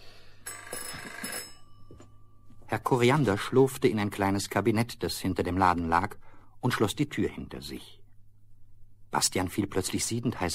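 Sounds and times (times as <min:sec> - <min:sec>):
telephone bell ringing in a shop: 0:00.4 - 0:02.7
speech: 0:02.7 - 0:08.0, 0:09.1 - 0:10.5.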